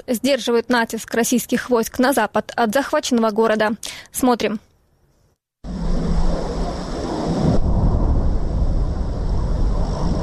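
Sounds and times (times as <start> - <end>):
speech: 0.0 - 4.7
jet-like roar of an incoming aerial bomb at frontline artillery positions: 5.6 - 10.2.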